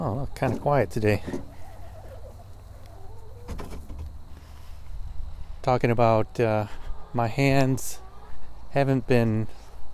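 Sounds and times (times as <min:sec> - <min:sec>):
chickens clucking: 0:00.0 - 0:09.9
speech: 0:00.2 - 0:01.5, 0:05.6 - 0:08.0, 0:08.7 - 0:09.6
chicken squawk: 0:01.5 - 0:03.5, 0:06.6 - 0:08.7.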